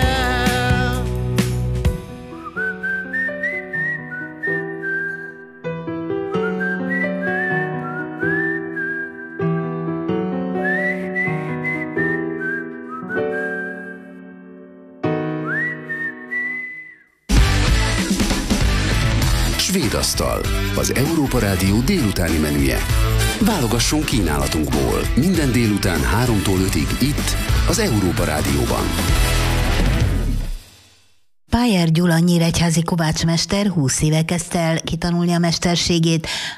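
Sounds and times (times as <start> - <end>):
burst of fuller brighter music: 0.0 - 16.6, 17.3 - 31.0
soft instrumental accompaniment: 0.0 - 16.6, 17.3 - 30.5
person whistling a lilting melody: 2.3 - 5.6, 6.3 - 9.6, 10.6 - 14.3, 15.4 - 17.2
speech: 20.0 - 29.4, 31.6 - 36.5.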